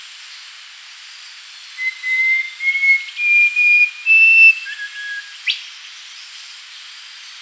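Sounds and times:
rufous-crowned babbler singing long pure whistled notes: 0:01.8 - 0:05.6.

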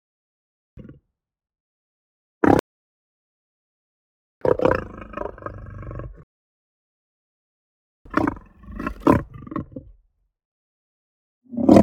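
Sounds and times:
lion roaring and growling: 0:04.5 - 0:06.3, 0:08.1 - 0:10.0, 0:11.5 - 0:11.8.

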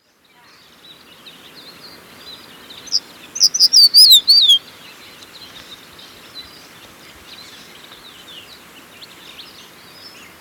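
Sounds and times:
quiet background hiss: 0:00.6 - 0:10.3
crested bunting singing: 0:02.9 - 0:04.6.

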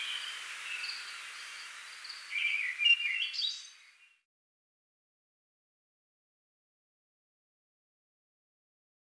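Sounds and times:
Tickell's thrush singing a warbling phrase of whistled notes: 0:00.0 - 0:04.2.

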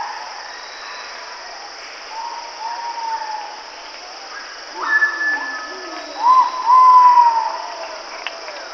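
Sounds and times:
Ivory-breasted pitta whistling: 0:04.8 - 0:07.6.

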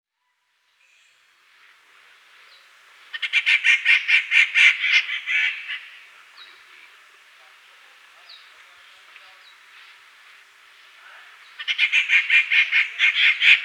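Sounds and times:
rufous treepie raspy rattling call: 0:03.1 - 0:06.0, 0:11.6 - 0:13.6
speech: 0:12.6 - 0:13.6.

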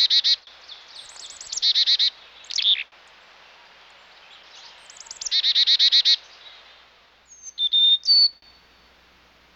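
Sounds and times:
chickadee calls: 0:00.0 - 0:02.9, 0:04.4 - 0:06.7, 0:07.3 - 0:09.0.

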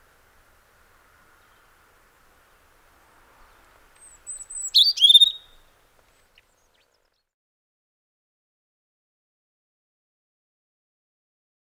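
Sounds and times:
European robin singing: 0:03.5 - 0:07.0.

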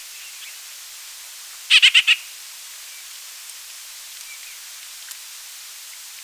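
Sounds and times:
White-winged grosbeak calling: 0:01.7 - 0:02.2.

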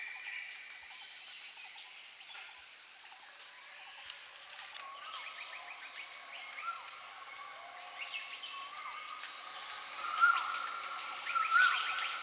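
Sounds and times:
Plain flowerpecker song with high sharp ticking trills: 0:05.0 - 0:12.2.

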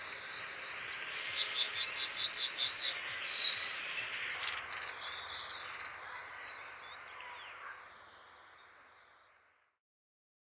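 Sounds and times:
pine bunting singing: 0:00.0 - 0:08.4.

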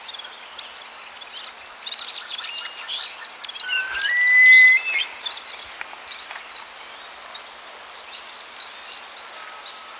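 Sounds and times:
Himalayan Snowcock whistling call: 0:03.6 - 0:05.1.

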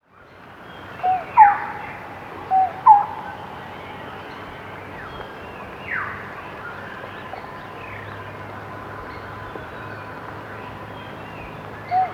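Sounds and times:
lineated barbet mellow hooting call: 0:01.0 - 0:03.6.

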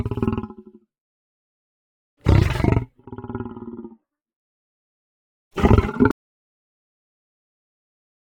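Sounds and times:
lion snarling: 0:00.0 - 0:00.7, 0:02.2 - 0:04.0, 0:05.6 - 0:06.2.

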